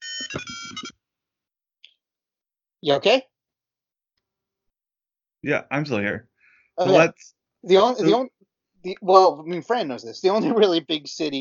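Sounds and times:
bright electronic phone ringtone: 0:00.0 - 0:01.0
speech: 0:02.8 - 0:03.3, 0:05.4 - 0:11.3.

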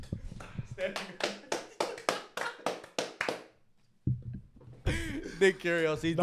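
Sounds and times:
hands clapping in applause: 0:00.4 - 0:03.6
speech: 0:00.8 - 0:01.4, 0:05.4 - 0:06.2.

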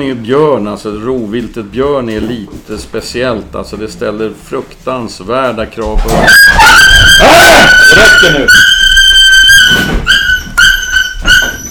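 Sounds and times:
speech: 0:00.0 - 0:08.8
frightened female puppy yelping: 0:06.2 - 0:11.7.

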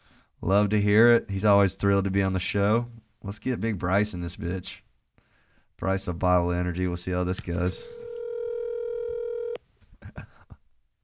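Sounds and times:
speech: 0:00.4 - 0:04.8, 0:05.8 - 0:08.0
high electronic tone of phone call being placed: 0:07.7 - 0:09.6.

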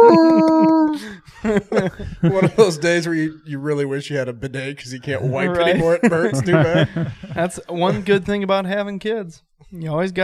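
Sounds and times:
person's voice imitating a dog's howl: 0:00.0 - 0:01.0
laughter: 0:00.0 - 0:03.3, 0:05.2 - 0:08.4
speech: 0:01.5 - 0:10.2.

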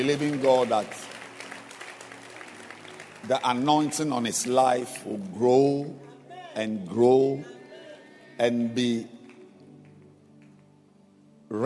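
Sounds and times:
speech: 0:00.0 - 0:01.2, 0:03.2 - 0:07.6, 0:08.4 - 0:09.2
audience clapping hands: 0:00.0 - 0:04.8.

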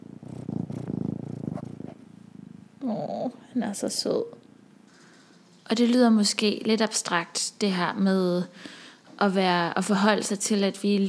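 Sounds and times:
domestic cat purring on a person's shoulder: 0:00.0 - 0:04.2
speech: 0:02.8 - 0:04.4, 0:05.7 - 0:11.0.

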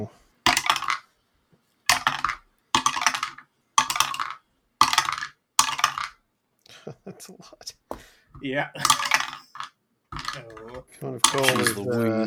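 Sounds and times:
speech: 0:00.0 - 0:00.2, 0:06.8 - 0:09.2, 0:10.4 - 0:12.2
handful of dice tumbling on a hard surface: 0:00.4 - 0:01.1, 0:01.9 - 0:06.2, 0:08.8 - 0:11.9.

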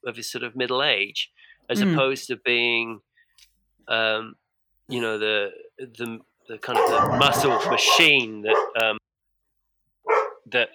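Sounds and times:
speech: 0:00.0 - 0:09.0, 0:10.5 - 0:10.7
dogs barking: 0:06.6 - 0:08.9, 0:10.0 - 0:10.5.

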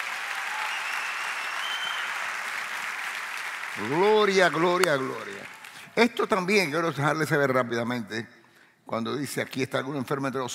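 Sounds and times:
congregation applauding: 0:00.0 - 0:06.1
speech: 0:03.8 - 0:10.5.

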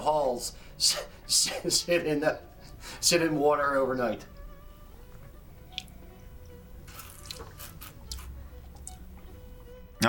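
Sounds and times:
speech: 0:00.0 - 0:04.4
sweet mead slurped to aerate it: 0:06.9 - 0:09.0.

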